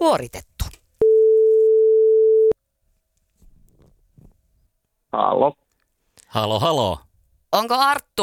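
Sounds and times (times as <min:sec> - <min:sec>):
speech: 0:00.0 - 0:00.5, 0:05.2 - 0:05.6, 0:06.3 - 0:08.2
telephone ringing tone while placing a call: 0:01.0 - 0:02.6.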